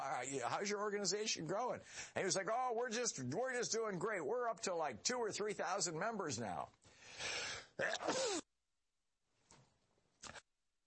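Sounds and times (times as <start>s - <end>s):
speech: 0.1s - 8.4s
sharp breathy intake: 6.9s - 7.7s
loud sneeze: 7.3s - 8.5s.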